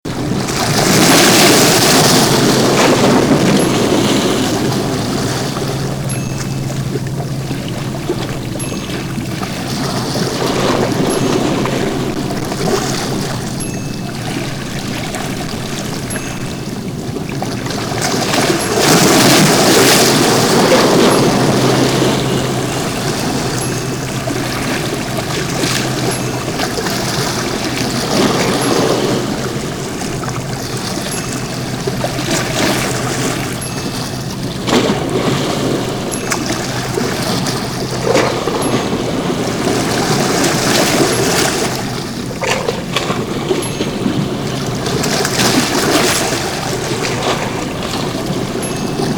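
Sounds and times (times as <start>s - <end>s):
waves crashing: 0.0s - 49.1s.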